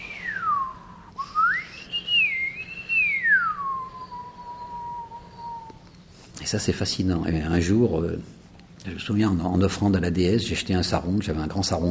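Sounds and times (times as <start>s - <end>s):
person whistling imitating the Mount Semeru volcano crater: 0.0s - 5.8s
speech: 6.5s - 11.8s.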